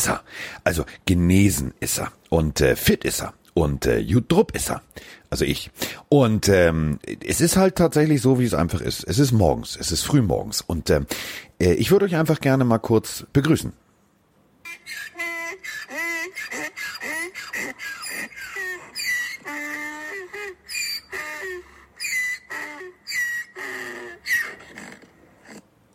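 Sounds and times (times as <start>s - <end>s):
speech: 0.0s - 13.8s
donkeys braying in a garden in the early morning: 14.7s - 25.6s.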